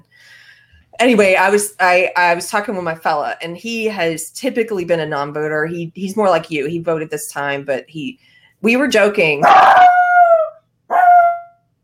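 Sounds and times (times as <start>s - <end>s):
speech: 1.0s - 10.0s
dog howling: 9.4s - 11.6s.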